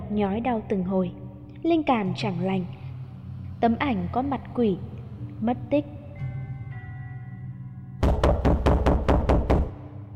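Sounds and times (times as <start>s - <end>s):
speech: 0.1s - 2.8s, 3.6s - 6.0s
firm heavy knocking on a door: 8.0s - 9.8s.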